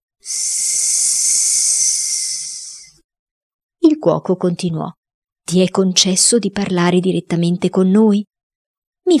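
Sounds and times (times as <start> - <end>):
speech: 0.2 - 0.5, 4.0 - 8.3
sustained breathy hiss made with the voice: 0.2 - 3.0.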